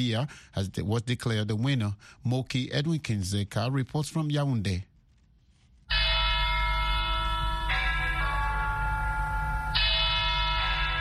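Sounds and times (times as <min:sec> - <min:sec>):
speech: 0:00.0 - 0:04.9
large cathedral church bells ringing: 0:05.9 - 0:10.9.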